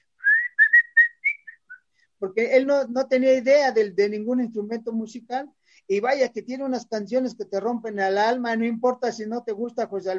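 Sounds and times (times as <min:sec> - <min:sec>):
person whistling a short melodic phrase: 0:00.2 - 0:01.8
speech: 0:02.2 - 0:10.1.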